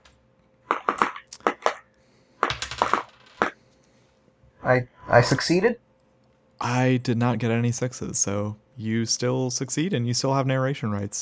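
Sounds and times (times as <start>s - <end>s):
handful of dice clattering across a hard table: 2.4s - 3.6s
speech: 4.7s - 5.8s, 6.6s - 11.2s.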